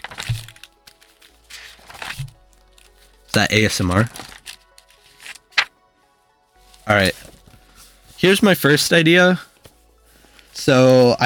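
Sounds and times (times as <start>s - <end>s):
paper pages of a doodle-filled sketchbook flapping and rustling: 0.0s - 5.7s, 7.0s - 7.6s
speech: 3.4s - 4.2s, 6.9s - 7.2s, 8.2s - 9.5s, 10.6s - 11.2s.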